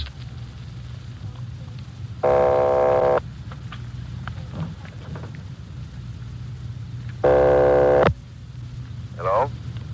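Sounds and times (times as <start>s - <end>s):
steady low telephone line hum: 0.0s - 9.9s
buzzy telephone ringback tones: 2.2s - 3.2s, 7.2s - 8.1s.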